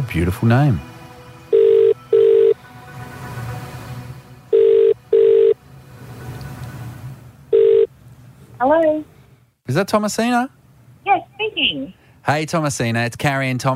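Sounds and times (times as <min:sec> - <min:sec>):
speech: 0:00.1 - 0:00.9, 0:08.6 - 0:09.1, 0:09.7 - 0:13.7
telephone ringing tone as a call is placed: 0:01.5 - 0:02.6, 0:04.5 - 0:05.6, 0:07.5 - 0:07.9.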